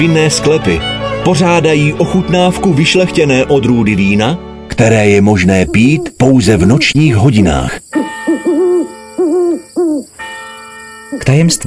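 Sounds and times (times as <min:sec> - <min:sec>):
speech: 0:00.0 - 0:07.9, 0:11.2 - 0:11.6
owl hooting at night: 0:05.4 - 0:07.0, 0:07.8 - 0:10.2
faint steady high tone: 0:06.0 - 0:11.6.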